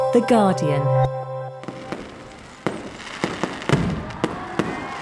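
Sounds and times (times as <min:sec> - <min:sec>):
speech: 0:00.1 - 0:01.2
fireworks display pops and bangs ahead of the new year: 0:02.5 - 0:05.0.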